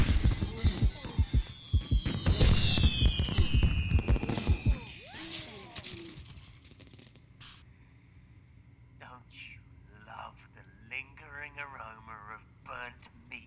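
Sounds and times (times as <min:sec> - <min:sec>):
video game slot machine fireworks power-up popping and crackling: 0:00.0 - 0:05.0
long descending whistle: 0:00.4 - 0:05.7.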